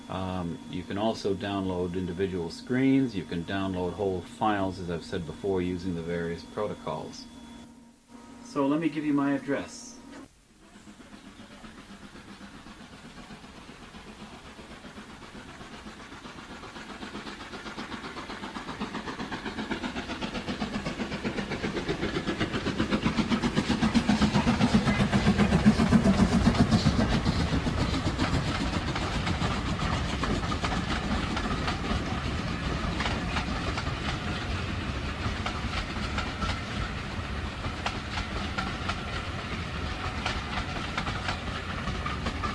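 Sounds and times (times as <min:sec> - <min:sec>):
speech: 0:00.1 - 0:07.4, 0:08.5 - 0:09.9
heritage railway train wheels clattering past: 0:10.8 - 0:42.5.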